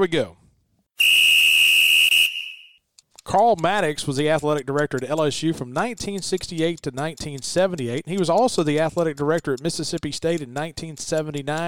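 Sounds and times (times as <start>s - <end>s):
speech: 0.0s - 0.4s, 3.3s - 11.6s
whistle blast to start segment: 1.0s - 2.8s.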